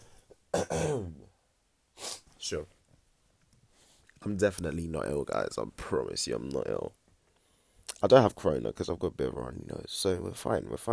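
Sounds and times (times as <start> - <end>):
throat clearing with coughing burst: 0.5 - 1.3
speech: 2.5 - 2.8, 4.2 - 7.0, 7.9 - 10.9.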